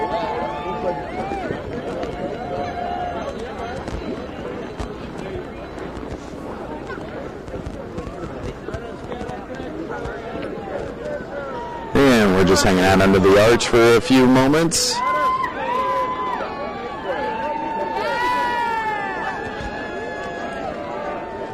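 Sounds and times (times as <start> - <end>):
large crowd cheering at a race finish: 0.0 - 21.5
speech: 12.5 - 15.0.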